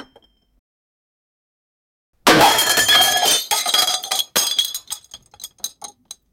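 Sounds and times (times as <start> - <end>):
crashing and smashing: 2.3 - 5.8.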